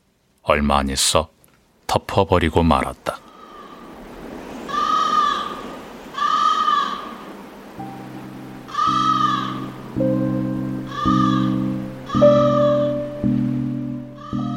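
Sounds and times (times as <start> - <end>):
speech: 0.5 - 3.2
crows cawing in the evening: 3.2 - 13.1, 14.1 - 14.5.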